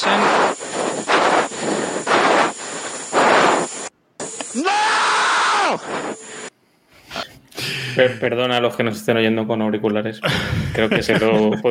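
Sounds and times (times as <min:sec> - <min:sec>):
heavy ragged breathing into the mic: 0:00.5 - 0:03.5, 0:06.2 - 0:08.3, 0:10.2 - 0:10.8
sharp vocal cry: 0:04.5 - 0:05.9
speech: 0:05.7 - 0:06.2, 0:08.0 - 0:11.6
laughter: 0:10.2 - 0:11.6.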